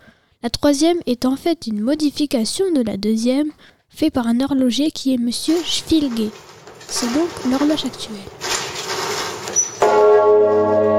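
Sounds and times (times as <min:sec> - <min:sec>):
speech: 0:00.4 - 0:08.5
cathedral's largest bell ringing, cast 1427, weighing nine tonnes: 0:09.8 - 0:10.9.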